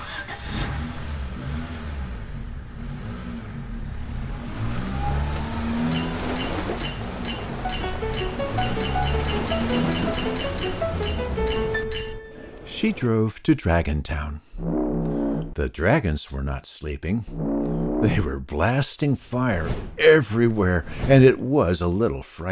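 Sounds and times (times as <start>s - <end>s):
car engine rumbling and revving as the car pulls away: 0.0s - 12.0s
high electronic beeps: 5.8s - 12.4s
speech: 12.8s - 14.7s, 15.6s - 22.4s.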